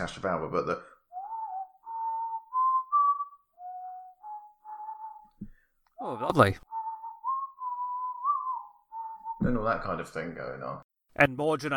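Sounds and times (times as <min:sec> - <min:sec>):
speech: 0:00.0 - 0:01.0, 0:06.0 - 0:06.7, 0:09.4 - 0:11.7
person whistling a melody imitating a synthesizer music theme: 0:01.1 - 0:05.7, 0:06.6 - 0:09.7.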